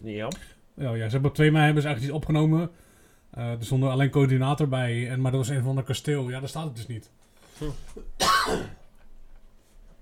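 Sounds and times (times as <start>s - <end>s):
speech: 0.0s - 8.8s
person coughing: 7.6s - 8.8s.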